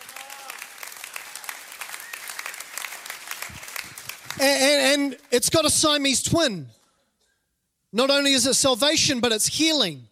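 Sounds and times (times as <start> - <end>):
audience clapping at a sermon: 0.0 - 5.6
speech: 4.4 - 6.8, 7.9 - 10.1.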